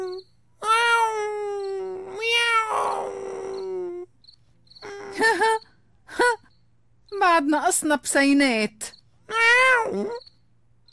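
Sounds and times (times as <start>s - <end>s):
cat meowing: 0.0s - 4.0s, 9.3s - 10.2s
speech: 7.4s - 8.9s, 9.9s - 10.2s.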